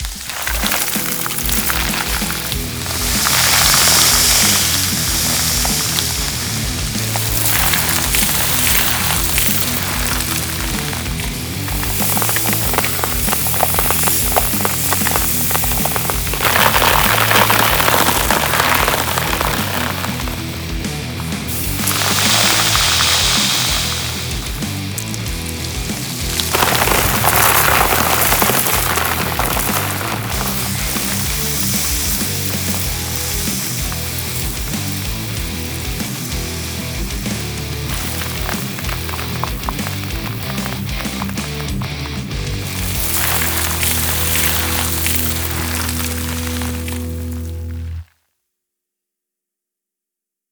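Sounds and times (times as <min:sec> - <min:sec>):
destruction debris of dust and dirt: 0:00.0 - 0:48.1.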